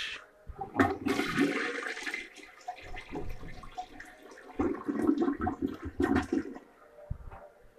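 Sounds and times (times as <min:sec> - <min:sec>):
toilet flushing: 0:00.6 - 0:06.6.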